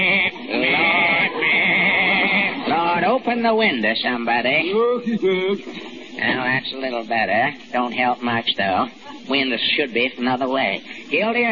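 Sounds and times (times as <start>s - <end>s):
goat bleating in a courtroom: 0.0s - 2.8s
laughter: 0.0s - 3.3s, 4.6s - 6.4s
speech: 3.2s - 11.4s.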